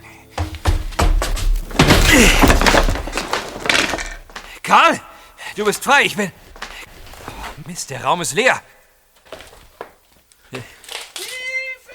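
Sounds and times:
basement door being kicked in: 0:00.4 - 0:04.5
rattle of debris: 0:00.4 - 0:04.6
speech: 0:02.2 - 0:02.7, 0:04.7 - 0:06.4, 0:07.7 - 0:08.7, 0:10.5 - 0:10.7.

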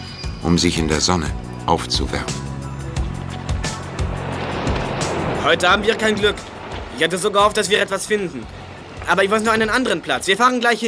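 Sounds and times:
motorboat approaching an island droning across the water: 0:00.0 - 0:10.8
speech: 0:00.4 - 0:02.4, 0:05.4 - 0:10.8
hull slaps thumping against waves: 0:00.7 - 0:10.8
rushing spray: 0:02.3 - 0:10.8.

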